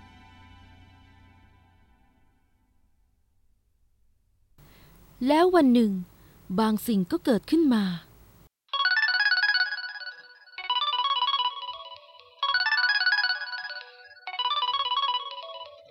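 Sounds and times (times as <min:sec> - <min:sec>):
speech: 0:05.2 - 0:08.1
mobile phone ringtone playing an electronic melody: 0:08.7 - 0:15.9.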